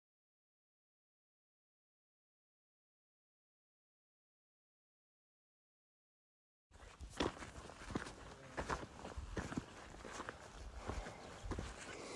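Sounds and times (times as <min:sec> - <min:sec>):
hiker footsteps scuffing on a steep desert rock face: 0:06.8 - 0:12.1.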